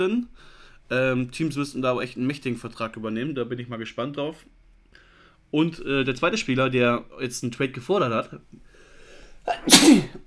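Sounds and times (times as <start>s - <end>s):
speech: 0.0s - 4.6s, 5.5s - 8.7s, 9.4s - 10.2s
loud sneeze during allergy season: 9.4s - 10.2s.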